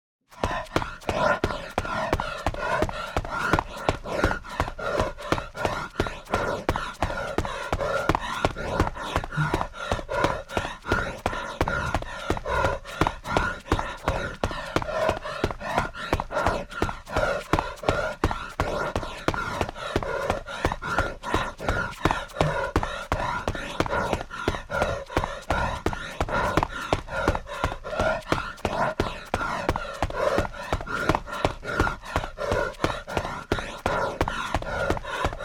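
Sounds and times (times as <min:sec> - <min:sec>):
person breathing: 0:00.3 - 0:35.4
running footsteps: 0:00.3 - 0:35.4.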